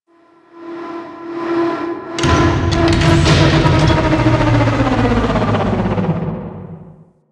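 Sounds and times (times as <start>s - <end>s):
ship generator starting and stopping: 2.2s - 7.0s.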